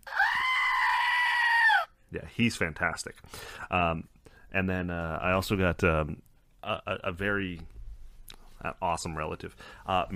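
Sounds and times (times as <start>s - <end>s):
screaming goat toy scream: 0.0s - 1.9s
speech: 2.1s - 7.8s, 8.6s - 10.1s.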